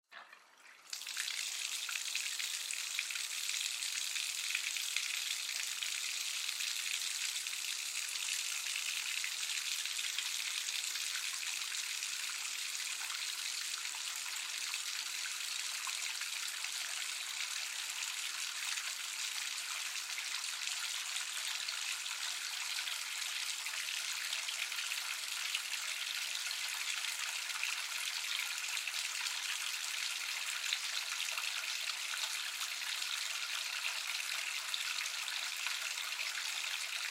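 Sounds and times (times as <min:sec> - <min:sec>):
water filling a household bathtub: 0:00.0 - 0:37.0.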